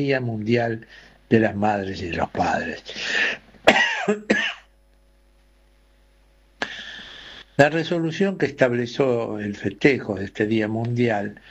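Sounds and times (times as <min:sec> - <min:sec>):
speech: 0:00.0 - 0:04.6, 0:07.6 - 0:11.4
harsh cough: 0:03.0 - 0:04.7.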